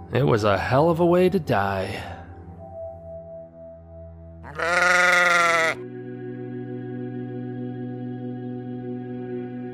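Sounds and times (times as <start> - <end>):
speech: 0.1 - 2.2
sheep bleating: 4.4 - 5.8.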